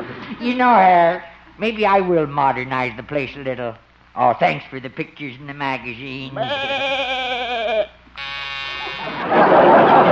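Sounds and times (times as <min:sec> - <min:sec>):
speech: 0:00.4 - 0:07.3
loud electric door buzzer: 0:08.2 - 0:09.3
laughter: 0:08.8 - 0:10.1.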